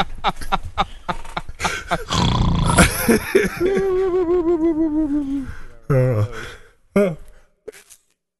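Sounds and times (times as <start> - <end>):
laughter: 0.0 - 2.1, 2.8 - 5.4
speech: 0.2 - 0.6
faint short breathy sounds: 0.8 - 3.0, 3.6 - 8.2
loud raspy snoring: 2.1 - 2.8.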